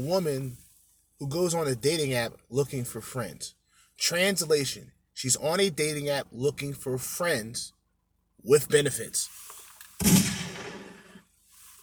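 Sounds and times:
speech: 0:00.0 - 0:00.6, 0:01.2 - 0:07.8, 0:08.4 - 0:10.3
gunshot sound effect: 0:10.0 - 0:11.2.

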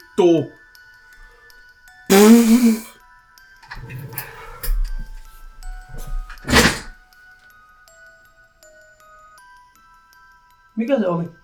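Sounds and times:
speech: 0:00.2 - 0:00.6, 0:02.5 - 0:02.9, 0:10.8 - 0:11.4
loud sharp burst: 0:02.1 - 0:02.9
dull thunks and clatters: 0:03.7 - 0:07.0.

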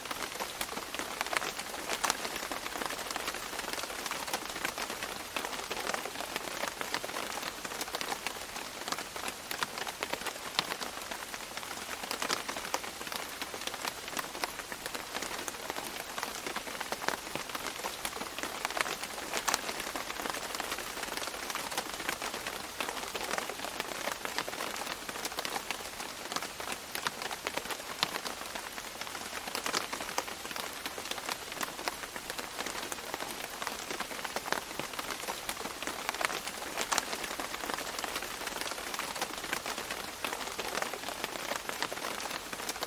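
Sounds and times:
gentle rain pattering densely on a surface: 0:00.0 - 0:42.8.

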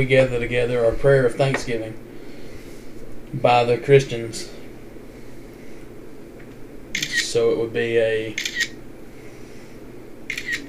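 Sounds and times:
speech: 0:00.0 - 0:02.1, 0:03.3 - 0:04.6, 0:07.3 - 0:08.6
low steady room hum: 0:00.0 - 0:10.6
camera shutter clicking: 0:07.0 - 0:07.2, 0:08.4 - 0:08.8, 0:10.3 - 0:10.6.

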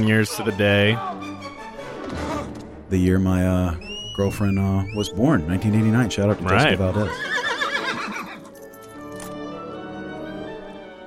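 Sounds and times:
speech: 0:00.0 - 0:01.3, 0:02.9 - 0:07.3
horse neighing: 0:06.4 - 0:08.5.

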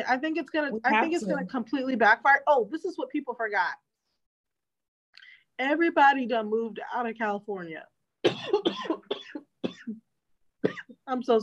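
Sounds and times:
speech: 0:00.0 - 0:03.9, 0:05.6 - 0:09.2, 0:10.6 - 0:11.4
woman coughing: 0:08.2 - 0:10.0, 0:10.6 - 0:11.0.

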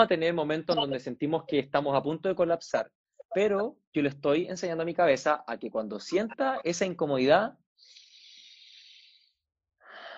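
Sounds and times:
speech: 0:00.0 - 0:08.0
person breathing deliberately: 0:07.8 - 0:09.3.

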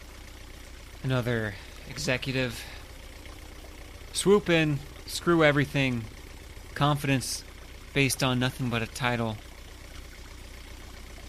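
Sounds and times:
boat engine idling heading upriver: 0:00.0 - 0:11.2
speech: 0:01.0 - 0:02.8, 0:04.2 - 0:06.2, 0:06.8 - 0:09.5.

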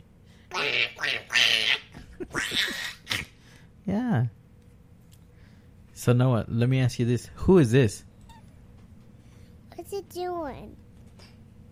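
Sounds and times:
speech: 0:00.5 - 0:02.8, 0:03.9 - 0:04.4, 0:06.0 - 0:08.1, 0:10.1 - 0:10.8
duck quacking: 0:00.5 - 0:03.3.

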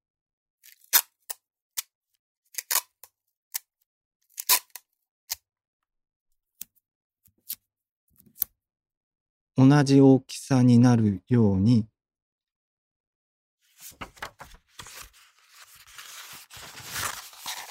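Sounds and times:
adhesive tape torn off while making a pipe: 0:02.6 - 0:03.0, 0:04.3 - 0:04.8
speech: 0:09.6 - 0:11.9.

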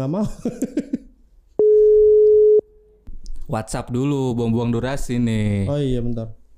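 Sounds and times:
speech: 0:00.0 - 0:01.0, 0:03.5 - 0:06.4
telephone busy tone from an unanswered call: 0:01.6 - 0:02.6.

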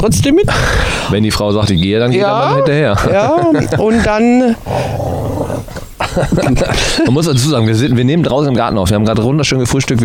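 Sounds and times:
speech: 0:00.0 - 0:05.1, 0:06.2 - 0:10.0
laughter: 0:02.1 - 0:04.6, 0:05.5 - 0:07.5
excited dogs growling and barking outdoors in a garden: 0:03.4 - 0:06.1.

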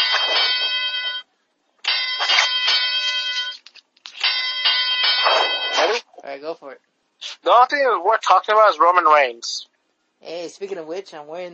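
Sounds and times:
bell ringing in rapid strikes: 0:00.0 - 0:01.3, 0:01.9 - 0:06.0
speech: 0:06.4 - 0:09.6, 0:10.2 - 0:11.5.

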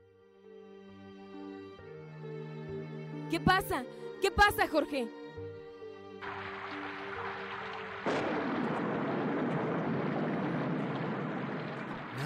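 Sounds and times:
speech: 0:03.3 - 0:05.2
heavy rain pouring during a traffic jam: 0:06.2 - 0:12.2.

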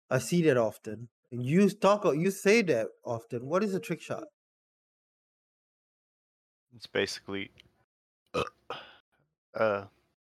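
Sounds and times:
speech: 0:00.1 - 0:04.4, 0:06.7 - 0:07.7, 0:08.3 - 0:08.9, 0:09.5 - 0:10.0
loud burp: 0:08.3 - 0:08.9.

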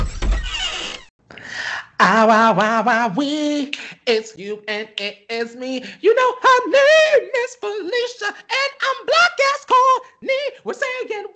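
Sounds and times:
pantry door creaking open: 0:00.0 - 0:01.1
speech: 0:02.0 - 0:11.3.

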